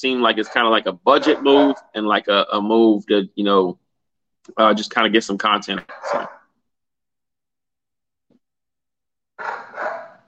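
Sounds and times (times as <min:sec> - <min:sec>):
speech: 0:00.0 - 0:03.8, 0:04.5 - 0:06.4
dog barking: 0:00.3 - 0:01.9, 0:05.8 - 0:06.5, 0:09.4 - 0:10.2.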